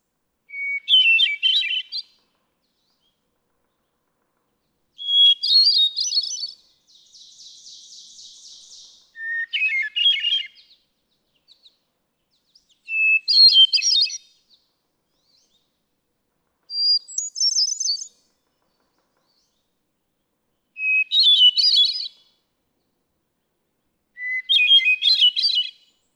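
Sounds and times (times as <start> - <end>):
hermit thrush singing: 0.5 - 2.2, 5.0 - 11.7, 12.3 - 14.4, 16.7 - 18.3, 20.7 - 22.2, 24.2 - 26.1.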